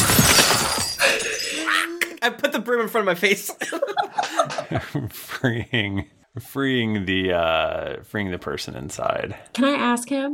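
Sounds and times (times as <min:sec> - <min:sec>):
crystal punched and shattering: 0:00.0 - 0:02.0
tinkling crystal shards ringing out and settling: 0:00.0 - 0:02.0
speech: 0:02.2 - 0:10.3
laughter: 0:03.3 - 0:06.7.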